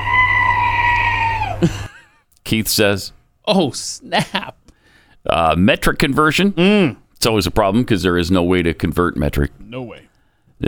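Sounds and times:
horror-style scream sound effect: 0.0 - 1.6
speech: 1.6 - 1.8, 2.5 - 4.6, 5.2 - 10.6.

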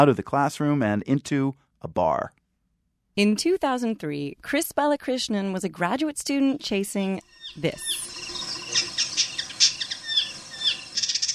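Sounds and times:
speech: 0.0 - 2.4, 3.2 - 9.1
indigo bird singing high chirps, buzzy trills and whistled notes: 7.2 - 11.3.

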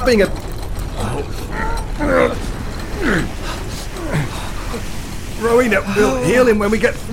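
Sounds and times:
speech: 0.0 - 0.5, 1.1 - 7.1
heavy mechanical gate creaking shut: 0.0 - 5.4
steady rumbling clatter of gate mechanism: 0.0 - 7.1.

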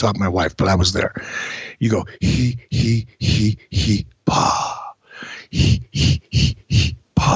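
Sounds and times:
speech: 0.0 - 7.3
man doing a Lamaze breathing exercise: 1.2 - 3.8, 4.4 - 7.3.

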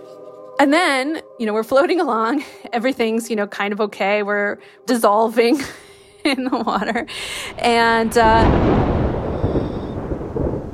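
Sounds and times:
speech: 0.6 - 8.8
rumbling thunder: 7.0 - 10.7
steady rain: 7.0 - 10.7.

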